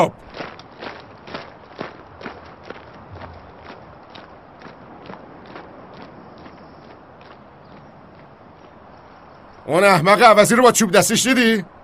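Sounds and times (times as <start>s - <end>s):
speech: 0.0s - 0.2s, 9.7s - 11.8s
footsteps of soldiers marching: 0.1s - 9.0s.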